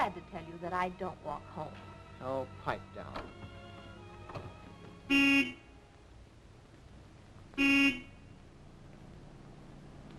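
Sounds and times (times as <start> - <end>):
speech: 0.0 - 3.6, 4.3 - 5.6, 7.6 - 8.1
low steady rumble of road noise: 0.0 - 10.1
approaching car honking its horn: 5.1 - 5.7, 7.6 - 8.3.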